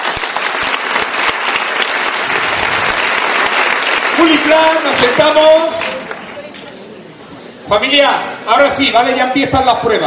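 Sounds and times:
audience applause from a crowd: 0:00.0 - 0:06.9
speech: 0:04.2 - 0:05.8, 0:07.7 - 0:10.0.

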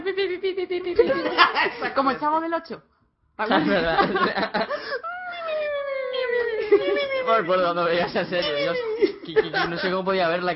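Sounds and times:
laughter: 0:00.0 - 0:02.2, 0:03.4 - 0:10.3
speech: 0:00.3 - 0:05.1, 0:06.7 - 0:10.5
voice imitating a little girl crying: 0:05.0 - 0:07.6.

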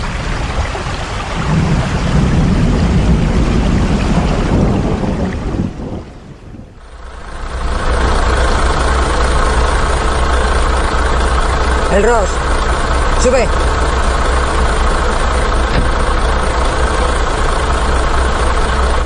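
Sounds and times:
truck engine idling: 0:00.0 - 0:19.0
speech: 0:12.0 - 0:12.4, 0:13.2 - 0:13.6.

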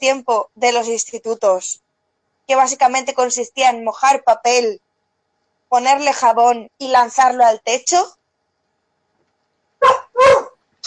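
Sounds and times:
speech: 0:00.0 - 0:01.9, 0:02.5 - 0:04.9, 0:05.7 - 0:08.2
dog barking: 0:09.8 - 0:10.6.

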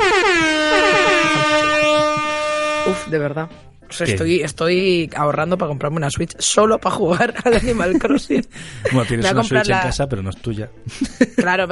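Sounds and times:
laughter: 0:00.0 - 0:03.1, 0:07.0 - 0:09.7, 0:10.8 - 0:11.7
faint rhythmic thumps: 0:00.0 - 0:03.6
loud sustained air horn blaring: 0:00.0 - 0:03.6
speech: 0:03.0 - 0:11.7.

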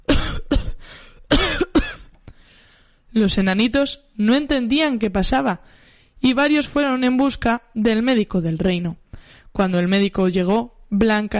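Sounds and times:
faint throat-clearing catch: 0:00.0 - 0:02.2
person coughing after choking on apple: 0:00.0 - 0:02.2
speech: 0:03.2 - 0:09.0, 0:09.6 - 0:11.3.

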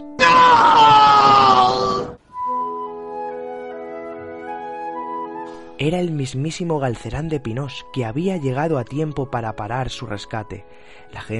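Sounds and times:
loud drawn-out shout: 0:00.2 - 0:02.2
speech: 0:05.8 - 0:11.3.

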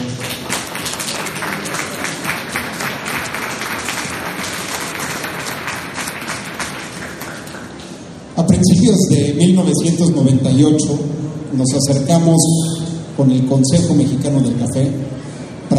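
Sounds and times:
audience applause at a coffee event: 0:00.0 - 0:08.0
speech: 0:08.6 - 0:15.7.

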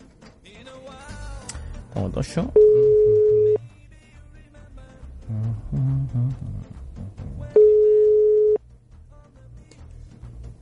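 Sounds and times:
speech: 0:02.0 - 0:03.2
telephone ringback tone of an outgoing phone call: 0:02.6 - 0:03.6, 0:07.6 - 0:08.6.

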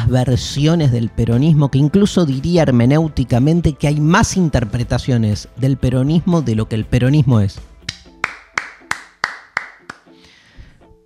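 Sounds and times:
speech: 0:00.1 - 0:07.7
single person clapping hands: 0:07.8 - 0:10.2.

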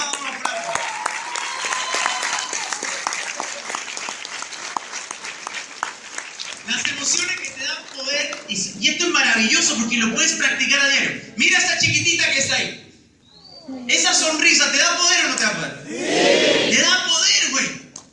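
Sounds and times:
audience giving a loud round of applause: 0:00.0 - 0:08.5
speech: 0:08.8 - 0:12.8, 0:13.9 - 0:17.8.

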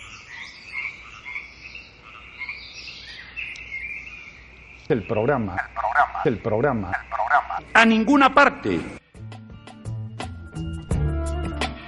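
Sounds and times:
chorus of frogs croaking: 0:00.0 - 0:07.8
speech: 0:04.9 - 0:09.0.

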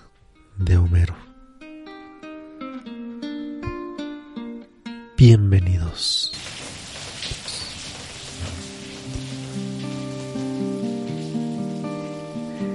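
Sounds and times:
speech: 0:00.6 - 0:01.3, 0:05.2 - 0:06.5
steady rain falling at night: 0:06.1 - 0:12.7.

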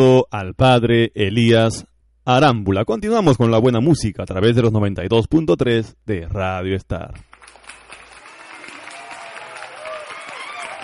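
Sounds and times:
speech: 0:00.0 - 0:07.3
crowd applause in worship: 0:07.2 - 0:10.8.

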